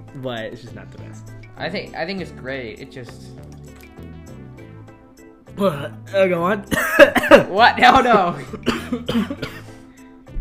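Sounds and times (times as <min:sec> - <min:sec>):
speech: 0:00.1 - 0:03.6, 0:05.6 - 0:09.6
person clearing throat with a throaty rasp: 0:06.7 - 0:07.5, 0:08.5 - 0:09.7
person coughing from choking on water: 0:06.7 - 0:09.8.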